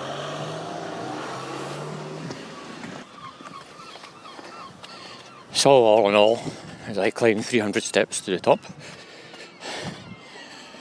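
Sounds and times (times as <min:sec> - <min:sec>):
low engine drone: 0:00.0 - 0:03.4
several seagulls calling by a harbour: 0:00.0 - 0:10.7
speech: 0:05.6 - 0:09.0.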